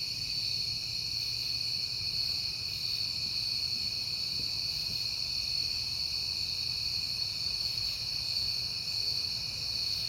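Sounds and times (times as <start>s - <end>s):
crickets chirping on a September night: 0.0s - 10.0s.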